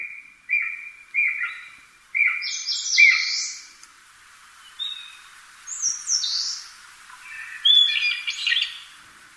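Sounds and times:
Japanese green woodpecker calling: 0:00.0 - 0:03.6, 0:05.7 - 0:08.8.

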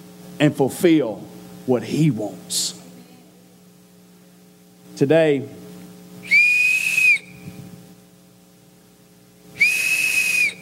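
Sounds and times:
low steady hum: 0:00.0 - 0:10.6
speech: 0:00.4 - 0:02.8, 0:05.0 - 0:05.6
shrill blasts from a small handheld whistle: 0:06.2 - 0:07.6, 0:09.6 - 0:10.6.

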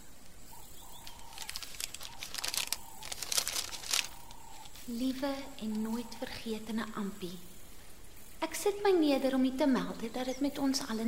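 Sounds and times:
paper letter crinkling as it is unfolded: 0:01.0 - 0:04.9
speech: 0:04.9 - 0:07.5, 0:08.6 - 0:11.0.

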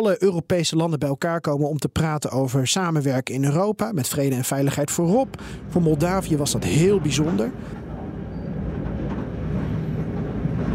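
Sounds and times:
speech: 0:00.0 - 0:07.8
train rolling along the tracks from Chișinău toward Bolbocha: 0:04.7 - 0:10.7.

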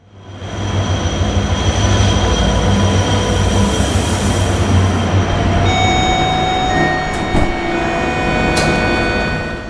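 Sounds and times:
train rolling along the tracks with a steady low rumble: 0:00.0 - 0:09.6
high ringing tones: 0:05.5 - 0:09.6
metallic train wheel squeals: 0:05.6 - 0:09.6.

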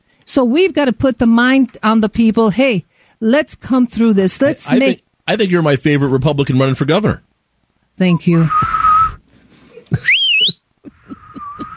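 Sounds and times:
speech: 0:00.3 - 0:07.3, 0:08.0 - 0:08.7, 0:09.9 - 0:10.2
person whistling: 0:08.5 - 0:09.2, 0:10.0 - 0:11.7.

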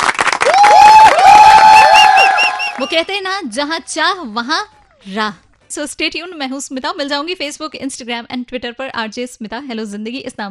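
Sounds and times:
crowd applause and cheering: 0:00.0 - 0:03.1
bright whistles from a crowd: 0:01.8 - 0:03.0
speech: 0:02.9 - 0:10.5.

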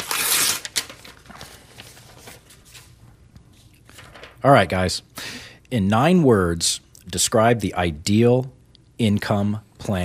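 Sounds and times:
envelope ripped open by hand: 0:00.0 - 0:02.4
paper crackling and rustling: 0:00.0 - 0:04.4
speech: 0:04.4 - 0:10.0.

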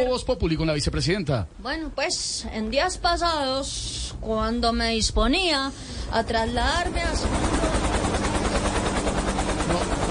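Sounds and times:
speech: 0:00.0 - 0:07.8
helicopter rotor noise: 0:05.4 - 0:10.1.

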